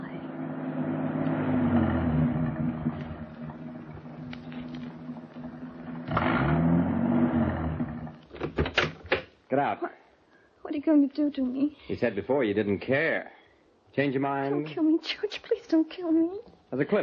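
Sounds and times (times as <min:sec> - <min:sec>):
car engine labouring as vehicle climbs uphill: 0:00.0 - 0:08.2
speech: 0:09.6 - 0:10.0, 0:10.8 - 0:17.0.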